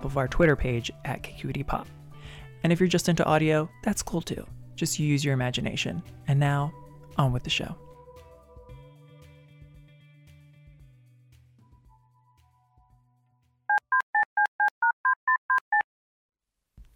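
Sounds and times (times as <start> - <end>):
speech: 0.0 - 7.9
telephone dial tone: 13.7 - 15.8
telephone keypad beeps: 13.7 - 15.8.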